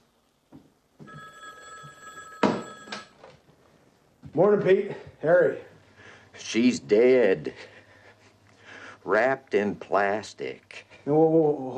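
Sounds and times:
old-fashioned telephone ringing with metallic trill: 1.0s - 3.4s
speech: 4.4s - 5.7s, 6.4s - 7.7s, 9.0s - 11.7s.

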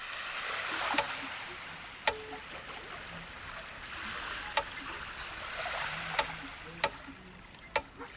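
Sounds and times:
shallow seawater washing as the tide comes in at a beach in Dublin: 0.0s - 8.1s
sharp irregular knocks and clicks: 2.0s - 2.4s, 7.6s - 7.9s.

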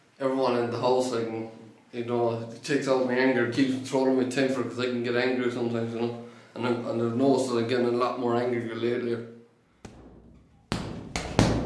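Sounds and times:
speech: 0.2s - 9.3s
punches landing on a punching bag in a farm outhouse: 9.9s - 11.6s.

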